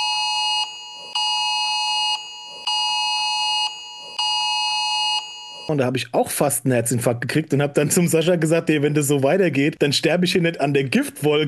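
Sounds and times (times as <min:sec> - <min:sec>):
piercing electronic emergency warning alarm: 0:00.0 - 0:05.7
speech: 0:05.7 - 0:11.4.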